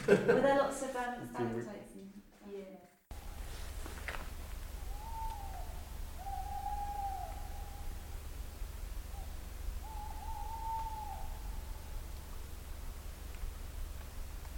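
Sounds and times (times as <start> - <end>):
laughter: 0.0 - 0.8
steady low noise: 0.0 - 14.5
speech: 0.1 - 2.9
owls hooting back and forth in a duet: 3.1 - 14.0.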